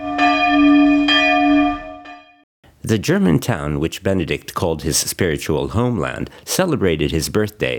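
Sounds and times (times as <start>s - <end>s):
large church bells tolling in Martel Germany: 0.0s - 2.3s
speech: 2.8s - 7.7s.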